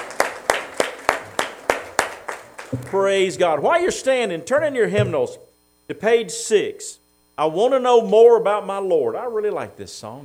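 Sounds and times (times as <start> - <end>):
hand claps of praise during a church service: 0.0 - 3.2
speech: 2.7 - 10.2.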